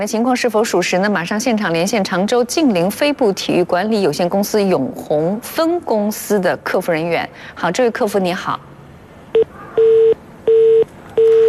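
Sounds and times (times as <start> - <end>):
speech: 0.0 - 8.7
telephone busy signal while dialing: 9.4 - 11.4.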